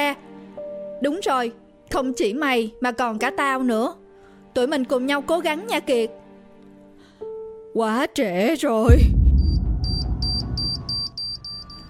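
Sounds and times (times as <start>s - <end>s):
speech: 1.0s - 6.2s, 7.7s - 9.2s
electronic alarm beeping: 9.3s - 11.8s.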